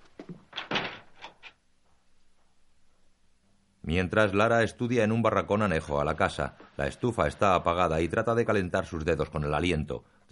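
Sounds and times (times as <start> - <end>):
house street door opening: 0.2 - 1.6
speech: 3.9 - 10.3.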